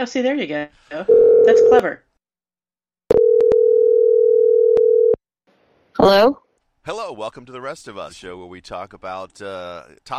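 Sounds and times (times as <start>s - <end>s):
speech: 0.0s - 2.1s, 6.0s - 10.1s
telephone ringing with a steady electronic tone: 1.1s - 1.9s, 3.1s - 5.2s.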